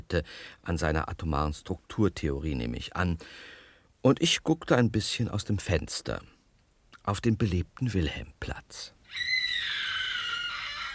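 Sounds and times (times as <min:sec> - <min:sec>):
speech: 0:00.1 - 0:06.4, 0:07.1 - 0:09.3
person screaming in a hotel suite: 0:09.1 - 0:10.9.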